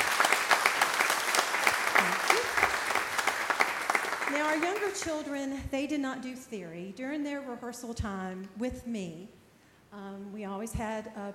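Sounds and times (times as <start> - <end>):
audience applause: 0.0 - 5.0
speech: 4.4 - 11.3.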